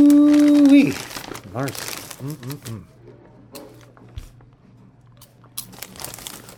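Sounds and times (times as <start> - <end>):
crinkly bag rustling: 0.0 - 2.8, 5.6 - 6.5
crisp crunching of snacks from a bag: 0.4 - 2.9, 5.2 - 6.5
speech: 0.9 - 3.0.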